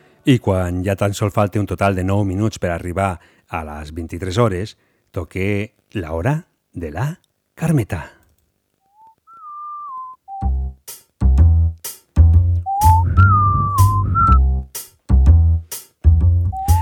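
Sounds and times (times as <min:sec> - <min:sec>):
speech: 0:00.2 - 0:08.2
person whistling a clear sliding melody: 0:08.9 - 0:10.7, 0:12.6 - 0:14.6, 0:16.4 - 0:16.7
thumping beats of backing music: 0:10.4 - 0:16.7.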